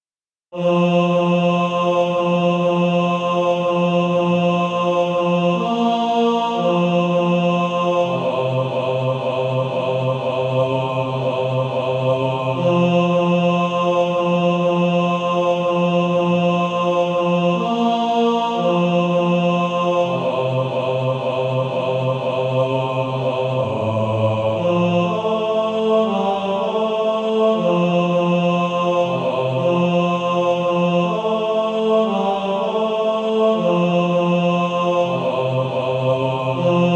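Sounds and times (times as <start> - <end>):
male choir bass section singing: 0.6 - 36.9.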